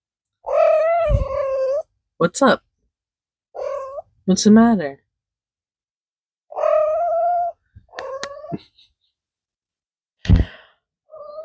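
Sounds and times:
cat meowing insistently for food: 0.4s - 1.9s, 3.6s - 4.1s, 6.5s - 8.6s
speech: 2.2s - 2.7s, 4.3s - 5.0s, 8.5s - 8.7s.

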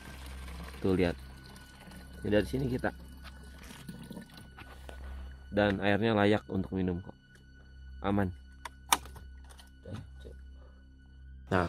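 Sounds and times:
water seeping from tree roots dripping into a container: 0.0s - 4.7s
speech: 0.8s - 1.3s, 2.2s - 3.0s, 5.5s - 7.2s, 8.0s - 8.4s.

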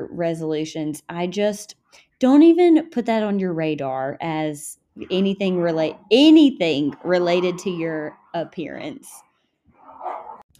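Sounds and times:
speech: 0.0s - 9.2s
two dogs growling and grumbling: 5.0s - 8.6s, 9.8s - 10.5s.

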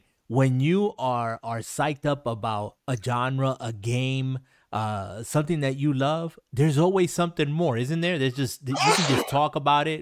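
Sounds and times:
speech: 0.3s - 10.0s
sneeze: 8.7s - 9.4s.

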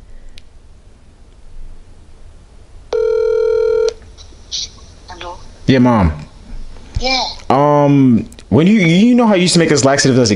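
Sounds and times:
quiet hiss: 0.0s - 10.3s
outgoing phone call ringback tone: 2.9s - 4.0s
speech: 5.7s - 6.2s, 7.0s - 10.3s.

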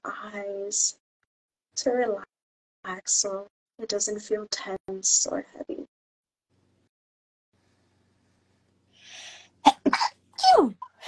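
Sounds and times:
speech: 0.3s - 1.0s, 1.8s - 5.8s, 10.6s - 11.0s
person sneezing during a Reiki meditation session: 9.6s - 10.1s.

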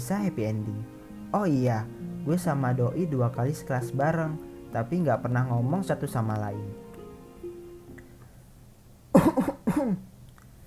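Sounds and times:
speech: 0.1s - 6.8s, 9.2s - 10.0s
harsh chesty coughing: 9.2s - 10.1s.

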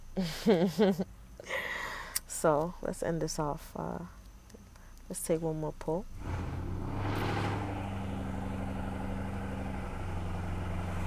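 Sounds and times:
speech: 0.2s - 1.1s, 2.4s - 4.2s, 5.1s - 6.6s
loud car engine roaring past: 6.2s - 11.0s.

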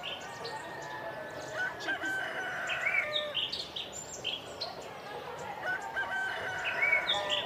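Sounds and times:
birds chirping: 0.0s - 7.4s
steady outdoor noise: 0.0s - 7.4s
rooster crowing sound effect: 1.0s - 3.4s, 5.6s - 7.4s.

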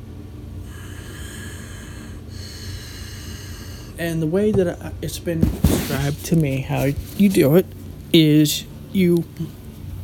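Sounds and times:
person breathing forcefully in a breathing technique: 0.6s - 4.0s
speech: 4.0s - 9.6s.

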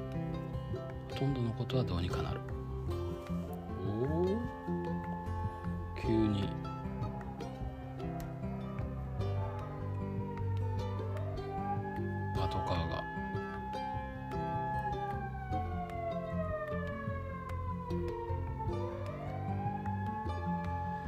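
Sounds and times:
emergency vehicle siren wailing: 0.0s - 21.0s
low rumble of traffic: 0.0s - 21.0s
speech: 1.2s - 2.5s.

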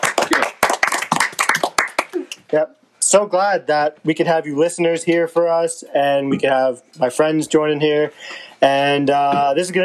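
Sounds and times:
small group of people clapping hands: 0.0s - 2.5s
speech: 2.5s - 9.8s.

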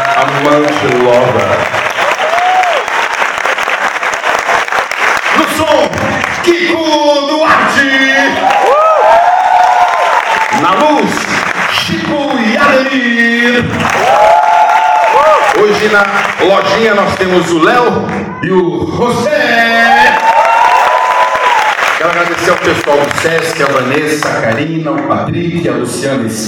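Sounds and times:
theatre audience cheering and whooping: 0.0s - 1.0s, 1.9s - 4.4s, 7.9s - 11.2s, 13.8s - 16.0s, 19.4s - 22.4s
packed theatre audience applause: 0.0s - 17.6s, 19.7s - 24.8s
speech: 15.8s - 20.3s, 22.0s - 26.4s.

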